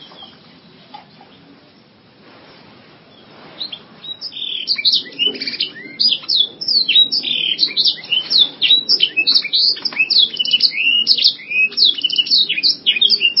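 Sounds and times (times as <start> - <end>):
canary singing quick high warbled phrases and chirps: 3.2 - 13.3.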